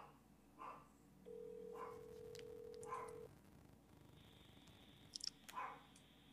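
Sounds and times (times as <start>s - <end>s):
dog barking: 0.0s - 0.9s, 1.7s - 2.2s, 2.8s - 3.3s, 5.5s - 5.9s
low background hum: 0.0s - 6.3s
steady electronic phone tone from a phone call being placed: 1.3s - 3.3s.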